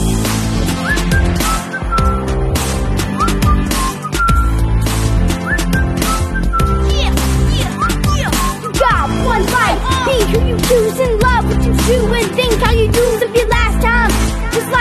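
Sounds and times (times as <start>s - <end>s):
loud full music track with a steady beat: 0.0s - 14.7s
person whistling a bright bouncy melody: 0.7s - 4.6s, 5.3s - 8.8s.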